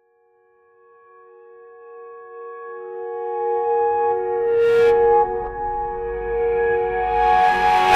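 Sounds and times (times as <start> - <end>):
distorted reflective reversed piano: 4.1 - 7.9.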